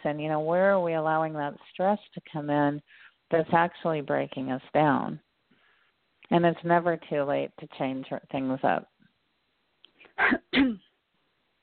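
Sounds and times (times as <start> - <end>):
speech: 0.0 - 5.2, 6.3 - 8.9, 10.2 - 10.8
person coughing: 10.2 - 10.9.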